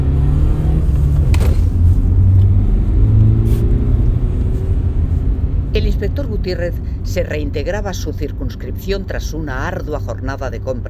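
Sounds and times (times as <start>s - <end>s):
car engine accelerating as the driver presses the gas pedal: 0.0s - 7.1s
speech: 6.4s - 10.8s.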